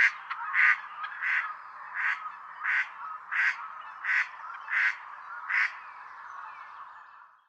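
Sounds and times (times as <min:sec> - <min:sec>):
female mallard quacking: 0:00.0 - 0:05.7.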